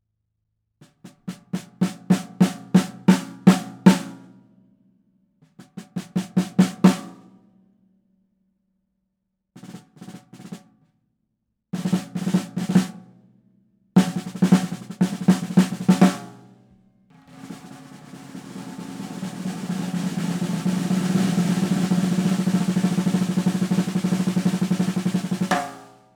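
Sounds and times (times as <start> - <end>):
70s Ludwig Super Sensitive snare drum: 0.8 - 4.3, 5.4 - 7.3, 9.6 - 10.8, 11.8 - 13.1, 14.0 - 26.1.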